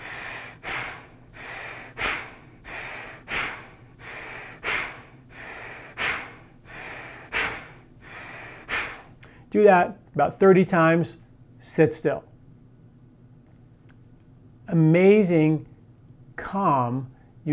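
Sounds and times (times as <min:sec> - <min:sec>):
forceful nasal bellows breathing in the Bhastrika technique: 0:00.0 - 0:09.2
speech: 0:09.5 - 0:12.3, 0:14.7 - 0:15.7, 0:16.5 - 0:17.5.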